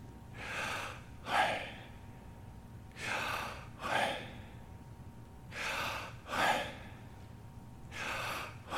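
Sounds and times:
human breathing, slow and steady: 0:00.3 - 0:02.2, 0:02.9 - 0:04.7, 0:05.5 - 0:07.2, 0:07.9 - 0:08.7.

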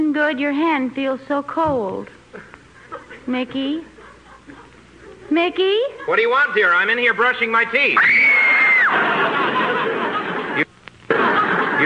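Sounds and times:
speech: 0:00.2 - 0:02.5, 0:03.2 - 0:03.9, 0:05.3 - 0:08.2
laughter: 0:02.3 - 0:07.2, 0:08.2 - 0:11.8
woman screaming: 0:08.0 - 0:08.9.

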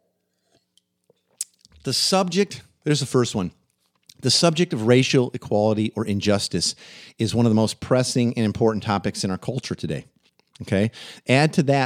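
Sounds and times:
small wet mouth clicks: 0:00.5 - 0:01.8, 0:10.2 - 0:10.6
speech: 0:01.8 - 0:03.6, 0:04.2 - 0:11.8.

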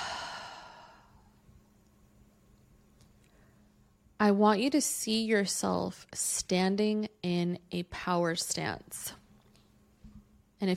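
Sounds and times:
person exhaling after a deep breath: 0:00.0 - 0:01.3
speech: 0:04.2 - 0:09.2.

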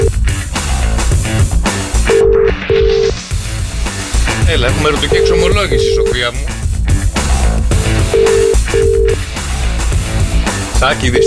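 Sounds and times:
busy loud music: 0:00.0 - 0:11.2
telephone ring tones: 0:02.1 - 0:03.2, 0:05.1 - 0:06.3, 0:08.1 - 0:09.2
speech: 0:04.5 - 0:06.6, 0:10.8 - 0:11.2.

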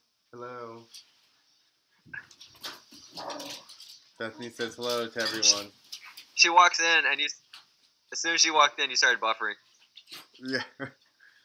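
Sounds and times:
speech: 0:00.4 - 0:01.1, 0:04.2 - 0:05.8, 0:06.4 - 0:07.4, 0:08.1 - 0:11.0
dogs whimpering and yelping excitedly as someone arrives home: 0:03.1 - 0:03.7.

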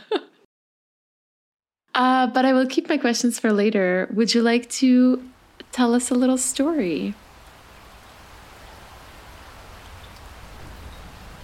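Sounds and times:
speech: 0:02.0 - 0:07.2
rain pattering against an old window during a storm at a hotel: 0:04.6 - 0:11.4.

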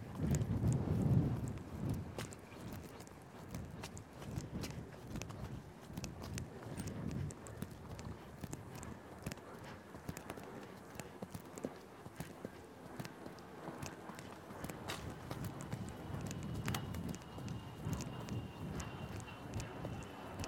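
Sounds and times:
horse trotting under a rider during schooling work: 0:00.0 - 0:20.4.

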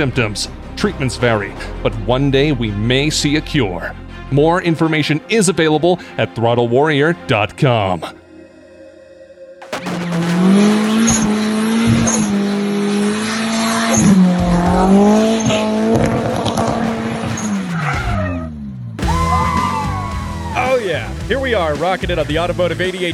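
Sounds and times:
speech: 0:00.0 - 0:08.2, 0:21.3 - 0:23.1
car engine roaring at high revs doing donuts: 0:09.6 - 0:19.0
car tires squealing doing donuts at a wedding: 0:09.7 - 0:20.9.

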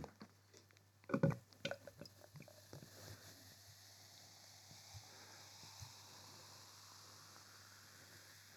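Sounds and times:
beer pouring into a glass: 0:01.7 - 0:08.5
beer foam fizzing as it settles: 0:01.8 - 0:08.5.

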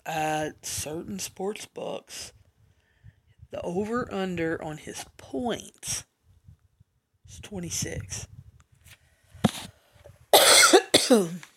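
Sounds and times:
speech: 0:00.0 - 0:02.4, 0:03.5 - 0:06.1, 0:07.3 - 0:08.3, 0:11.1 - 0:11.5
quiet breathing: 0:02.6 - 0:03.5, 0:08.9 - 0:10.2
person coughing harshly: 0:10.4 - 0:11.4.

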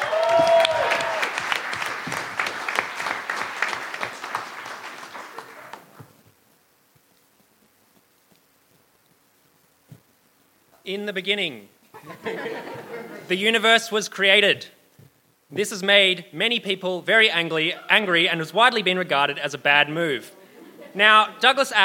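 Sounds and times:
audience applause at a live science talk event: 0:00.0 - 0:06.1
speech: 0:10.9 - 0:14.8, 0:15.5 - 0:20.4, 0:21.0 - 0:21.8
laughter: 0:12.0 - 0:13.3, 0:20.3 - 0:21.0.

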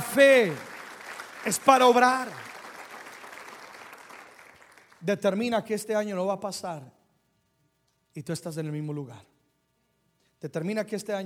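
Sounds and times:
audience applauding: 0:00.0 - 0:05.0
speech: 0:00.2 - 0:00.7, 0:01.4 - 0:02.5, 0:05.0 - 0:07.0, 0:08.2 - 0:09.3, 0:10.4 - 0:11.2.

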